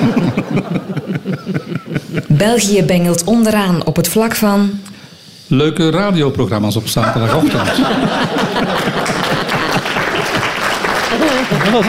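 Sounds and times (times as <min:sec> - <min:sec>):
laughter: 0:00.0 - 0:02.5, 0:07.0 - 0:11.8
speech: 0:02.4 - 0:04.8, 0:05.5 - 0:08.7, 0:11.5 - 0:11.8
crowd applause of many hands clapping: 0:07.4 - 0:11.8.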